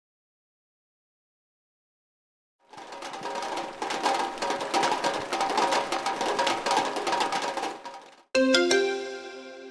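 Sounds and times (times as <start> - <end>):
steady rain drumming on a tin roof: 2.6 - 8.3
short bright electronic chime: 8.4 - 9.6.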